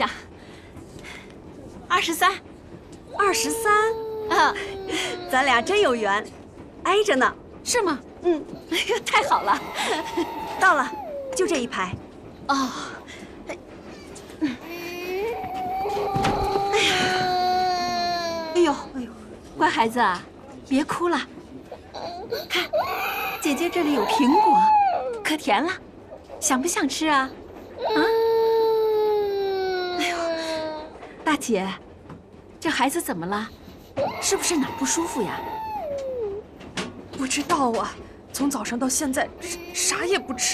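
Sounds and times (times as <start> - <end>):
speech: 0.0 - 0.3, 1.9 - 2.5, 3.2 - 13.0, 18.7 - 21.4, 22.3 - 28.2, 31.3 - 31.9, 32.6 - 35.7, 37.2 - 40.5
unwell baby crying aboard a passenger train: 3.2 - 5.8, 9.2 - 11.5, 14.6 - 18.7, 22.0 - 25.2, 27.8 - 30.9, 34.0 - 36.4, 39.4 - 40.5.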